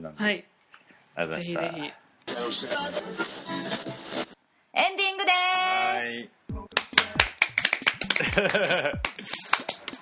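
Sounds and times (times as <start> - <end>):
speech: 0.0 - 0.5, 1.2 - 4.0, 4.8 - 6.5, 8.4 - 9.4
small group clapping: 6.7 - 9.9
people laughing: 8.0 - 9.9.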